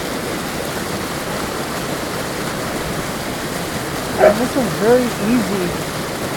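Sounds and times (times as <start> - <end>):
waterfall rushing: 0.0 - 6.3
speech: 4.2 - 5.9.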